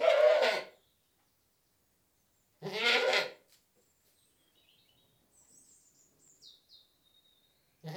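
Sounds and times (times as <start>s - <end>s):
British goat giving loud harsh bleats: 0.0s - 0.8s, 2.6s - 3.4s.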